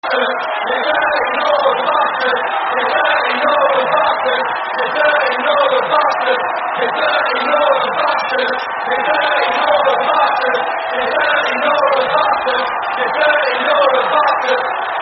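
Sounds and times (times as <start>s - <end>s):
football terrace crowd chanting: 0.0s - 15.0s.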